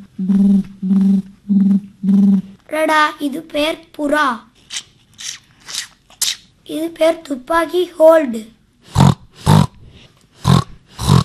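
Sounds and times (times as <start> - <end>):
speech: 0.2 - 1.0, 2.8 - 4.5, 6.7 - 8.6
pig grunting: 8.9 - 9.8, 10.4 - 11.2.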